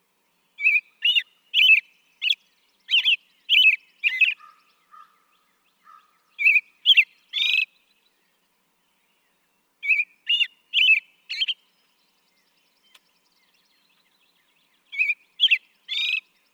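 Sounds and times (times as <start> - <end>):
American robin caroling with clear whistled phrases: 0.6 - 4.8, 6.3 - 8.2, 9.8 - 16.5.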